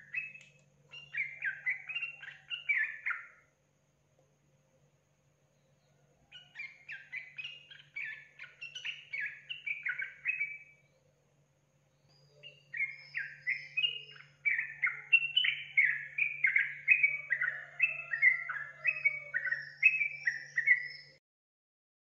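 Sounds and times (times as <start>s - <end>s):
Yellow-vented Bulbul song: 0.0s - 3.6s, 5.4s - 21.2s
faint hum: 0.0s - 19.4s.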